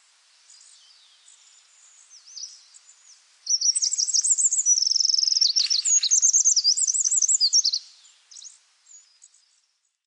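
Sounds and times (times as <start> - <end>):
Eurasian wren Troglodytes troglodytes singing rapid trills, rattles and ringing notes: 3.5 - 8.5.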